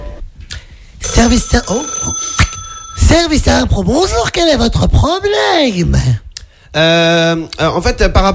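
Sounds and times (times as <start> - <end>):
telephone ringing: 1.0 - 3.8
speech: 1.3 - 2.4, 3.1 - 8.3.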